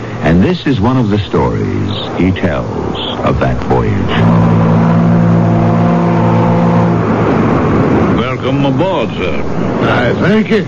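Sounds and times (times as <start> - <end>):
riverboat engine drone with deep harmonic hum: 0.0 - 10.6
speech: 0.4 - 5.0, 8.4 - 10.6
rougher churning rush of noise: 3.3 - 10.6.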